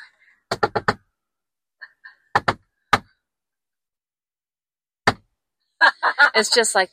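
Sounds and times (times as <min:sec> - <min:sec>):
rhythmic code knock on a wooden door: 0:00.5 - 0:01.0, 0:02.3 - 0:03.1
laughter: 0:05.8 - 0:06.8
speech: 0:06.4 - 0:06.9.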